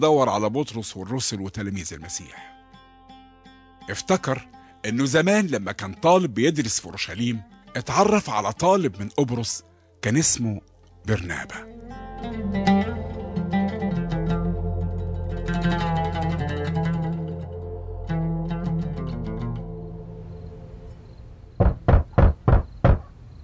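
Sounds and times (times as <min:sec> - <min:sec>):
speech: 0:00.0 - 0:02.6, 0:03.9 - 0:12.8
soft music: 0:00.0 - 0:21.2
firm knocks on a wooden door: 0:21.6 - 0:23.1.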